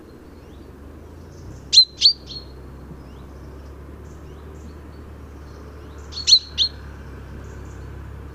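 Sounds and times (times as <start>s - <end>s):
low steady hum: 0.0s - 8.3s
common chaffinch Fringilla coelebs calls: 0.4s - 6.8s.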